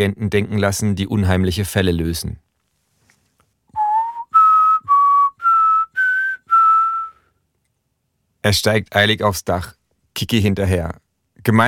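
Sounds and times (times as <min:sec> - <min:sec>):
speech: 0:00.0 - 0:02.4, 0:08.4 - 0:11.6
old man whistling tones to unlock a heavy hatch: 0:03.7 - 0:07.4.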